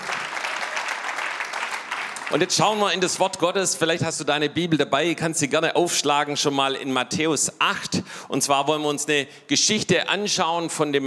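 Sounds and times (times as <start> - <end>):
audience applauding: 0.0 - 3.1
speech: 2.3 - 11.0.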